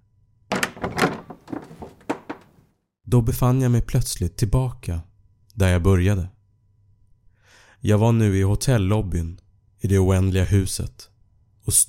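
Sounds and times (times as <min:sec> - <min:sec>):
door opening: 0:00.5 - 0:02.6
speech: 0:03.1 - 0:06.4, 0:07.8 - 0:11.1, 0:11.7 - 0:11.8.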